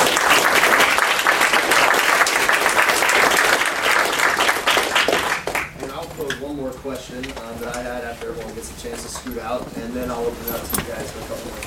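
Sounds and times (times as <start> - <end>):
applause from a large audience at a talk: 0.0 - 6.0
speech: 8.2 - 11.6.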